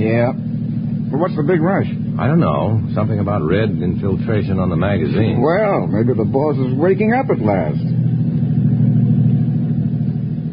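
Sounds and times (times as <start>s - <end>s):
car engine droning while driving: 0.0s - 10.5s
speech: 0.1s - 0.5s, 1.1s - 8.0s.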